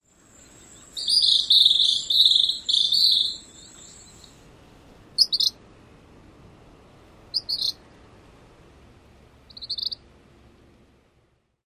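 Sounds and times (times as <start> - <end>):
bird calls: 0.2 - 4.4, 5.2 - 5.6, 7.3 - 7.8, 9.5 - 10.0.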